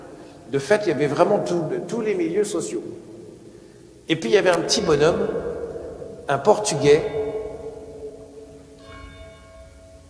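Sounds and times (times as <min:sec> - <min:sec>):
speech: 0:00.5 - 0:03.1, 0:04.1 - 0:05.5, 0:06.3 - 0:07.2
church bells ringing in a sustained resonant peal: 0:04.2 - 0:10.0.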